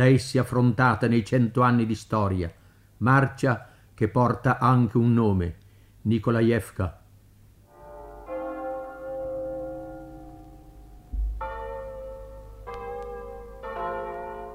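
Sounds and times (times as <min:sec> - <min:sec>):
speech: 0:00.0 - 0:07.0
church bells ringing a double peal from a nearby village in the countryside: 0:07.7 - 0:14.5.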